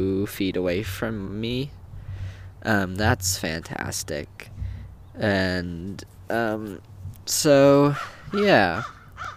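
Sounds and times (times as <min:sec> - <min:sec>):
speech: 0:00.2 - 0:01.8, 0:02.6 - 0:04.6, 0:05.2 - 0:09.3
bird giving harsh caw-like calls: 0:07.8 - 0:09.3.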